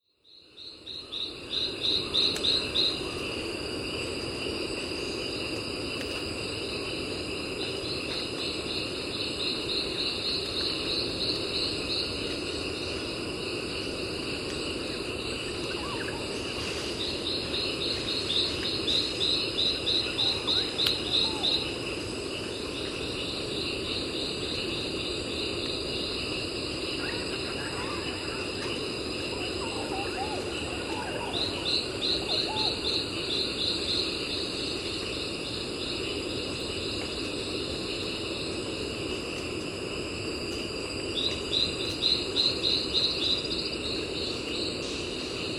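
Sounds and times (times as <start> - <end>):
morning landscape ambience in Gandoca-Manzanillo: 0.0 - 45.5.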